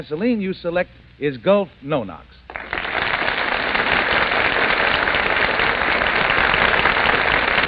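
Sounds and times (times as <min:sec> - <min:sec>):
speech: 0:00.0 - 0:02.6
large studio audience applauding: 0:02.5 - 0:07.6.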